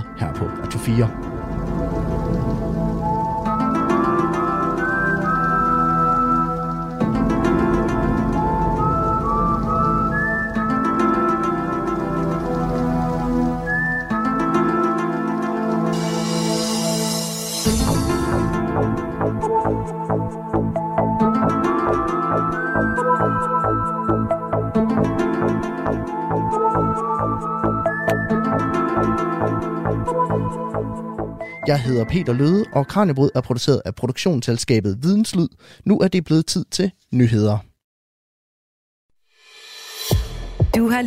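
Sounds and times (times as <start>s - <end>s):
speech: 0.2s - 3.2s, 31.9s - 37.7s, 40.7s - 41.0s
shimmering rain-like synth pads with a steady pulse: 0.4s - 32.8s
lone whistled melody in science-fiction TV theme music: 3.0s - 33.5s.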